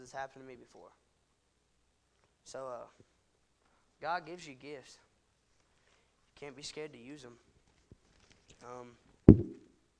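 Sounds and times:
speech: 0.1s - 1.1s, 2.4s - 3.2s, 4.0s - 5.1s, 6.4s - 7.5s, 8.6s - 9.6s
knock on a hard surface: 9.3s - 9.6s.

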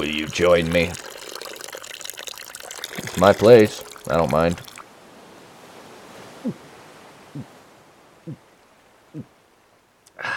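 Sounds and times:
speech: 0.0s - 1.1s, 3.2s - 4.7s, 6.4s - 6.6s
drink pouring into a glass: 0.0s - 4.8s.

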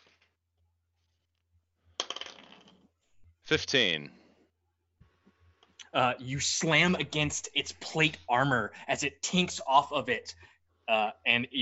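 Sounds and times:
dice tumbling and clattering on a surface for a tabletop attack roll: 2.0s - 2.9s
speech: 3.5s - 4.2s, 6.0s - 11.6s.

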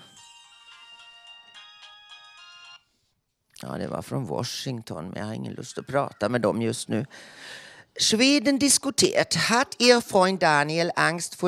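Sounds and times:
phone ringtone with bright repeating electronic tones: 0.0s - 2.9s
speech: 3.6s - 11.4s.

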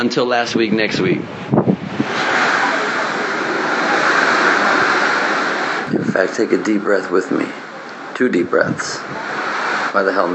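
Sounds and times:
speech: 0.0s - 2.4s, 6.2s - 7.6s, 8.2s - 9.4s, 10.0s - 10.3s
ocean waves breaking on shore: 1.8s - 8.2s, 9.0s - 10.3s.

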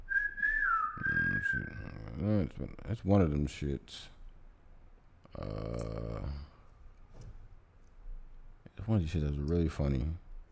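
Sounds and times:
long shrill whistle blast: 0.0s - 1.7s
speech: 2.2s - 4.2s, 5.4s - 6.5s, 8.8s - 10.2s.

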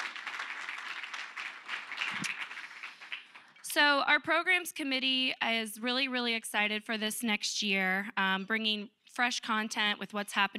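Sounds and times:
audience applauding an event's programs committee: 0.0s - 3.7s
speech: 3.8s - 10.5s.

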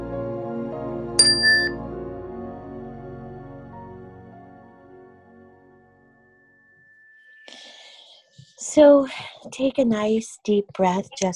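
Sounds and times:
meditation chime struck and ringing: 1.2s - 1.8s, 6.2s - 8.3s
speech: 8.7s - 11.3s.

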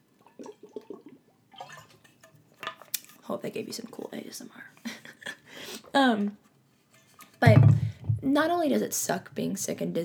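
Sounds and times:
sipping water: 0.2s - 2.0s
speech: 3.3s - 5.0s, 5.9s - 6.4s, 8.2s - 10.0s.

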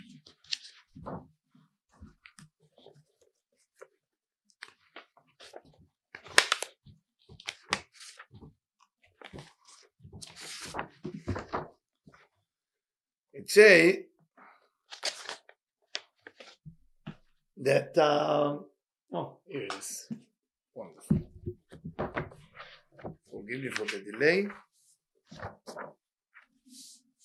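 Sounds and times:
sheet of paper rustling and crinkling while handled: 0.0s - 4.0s, 4.6s - 12.4s, 14.5s - 17.3s, 21.7s - 27.2s
speech: 13.5s - 14.1s, 17.7s - 20.2s, 23.5s - 24.6s.

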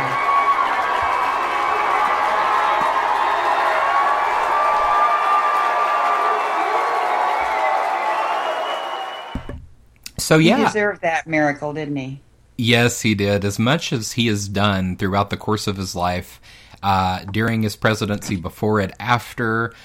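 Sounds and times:
loud crowd clapping: 0.0s - 9.4s
whoops and shouts: 0.0s - 9.4s
speech: 10.3s - 19.8s.

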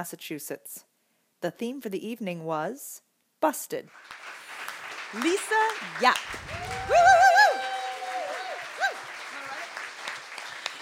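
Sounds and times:
speech: 0.0s - 4.2s, 5.1s - 7.3s
audience applause: 3.9s - 10.8s
person whooping: 6.4s - 9.2s.

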